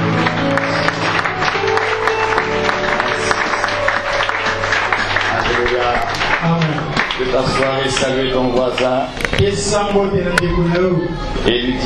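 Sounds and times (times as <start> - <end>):
sustained keyboard chord: 0.0 - 8.6
church audience clapping and cheering: 0.0 - 10.0
speech: 7.3 - 11.8.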